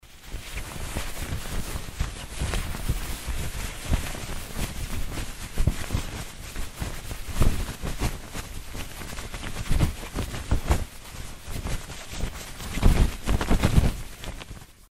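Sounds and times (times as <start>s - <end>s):
choosing clothes in a wardrobe: 0.0s - 14.8s.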